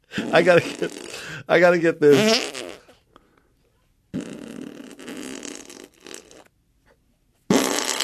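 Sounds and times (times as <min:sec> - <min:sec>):
wet flapping armpit farts made by a grown man: 0:00.2 - 0:01.2, 0:02.1 - 0:03.0, 0:04.1 - 0:06.5, 0:07.5 - 0:08.0
speech: 0:00.3 - 0:02.6.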